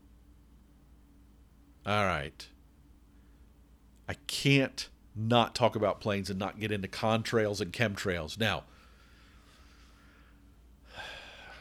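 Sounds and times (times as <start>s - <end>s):
speech: 1.8s - 2.6s, 4.1s - 8.7s
heavy breathy intake of air: 8.7s - 11.6s.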